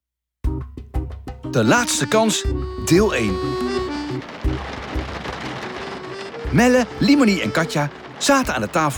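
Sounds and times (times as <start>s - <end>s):
low thumps: 0.5s - 8.9s
speech: 1.5s - 3.9s, 6.5s - 8.9s
rain tapping against the windows and roof of a camper: 1.5s - 8.9s
soft sustained low tones: 1.8s - 8.8s.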